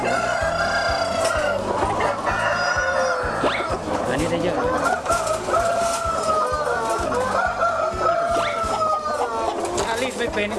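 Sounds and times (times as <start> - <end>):
chickens clucking and squawking while being caught: 0.0 - 10.5.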